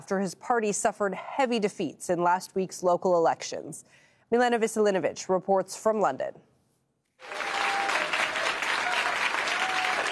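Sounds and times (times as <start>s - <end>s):
speech: 0.0s - 6.5s
audience applause: 7.2s - 10.1s.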